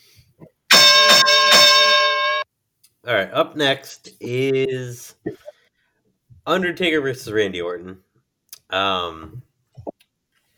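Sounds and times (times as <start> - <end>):
boxing ring bell struck to end the match: 0.7 - 2.4
speech: 3.1 - 5.5, 6.4 - 8.1, 8.7 - 9.5.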